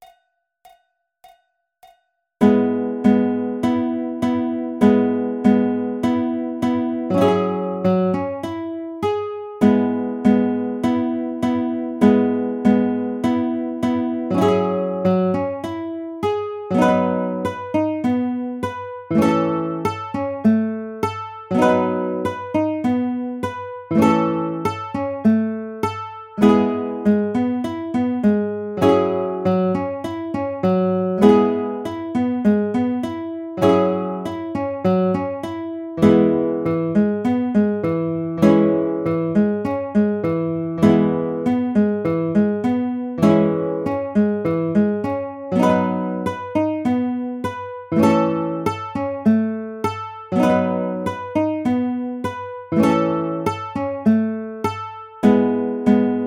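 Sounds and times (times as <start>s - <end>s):
E major baritone arpeggiator: 2.4s - 56.2s.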